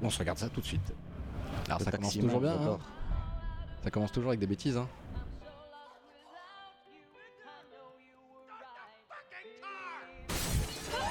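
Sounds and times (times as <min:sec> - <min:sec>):
speech: 0:00.0 - 0:03.0, 0:03.8 - 0:05.0
glass window shattering as a person goes through it: 0:10.3 - 0:11.0.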